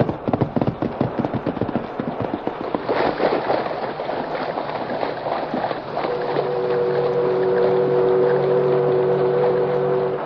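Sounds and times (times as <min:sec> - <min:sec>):
white horse with a rider plunging into a deep swirling river: 0:00.0 - 0:07.7
loud steady rushing river water: 0:00.0 - 0:10.2.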